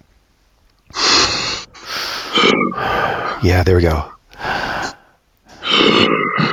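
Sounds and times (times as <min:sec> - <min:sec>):
person voicing an ogre making deep bass breathing: 0:00.9 - 0:03.6, 0:04.3 - 0:06.5
speech: 0:02.3 - 0:04.2.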